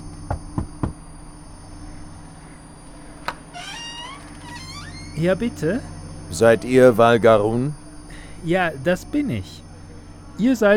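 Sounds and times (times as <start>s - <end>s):
low hum: 0.0s - 10.7s
knocking on a door: 0.3s - 1.0s
squeaky door creak: 3.2s - 5.3s
speech: 5.2s - 7.8s, 8.4s - 9.6s, 10.4s - 10.7s.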